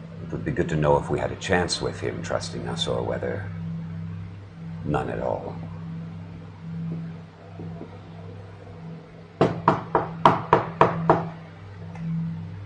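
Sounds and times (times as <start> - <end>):
low continuous hum: 0.0 - 12.6
speech: 0.3 - 3.6, 4.8 - 5.7
firm knocks on a door: 9.4 - 11.4.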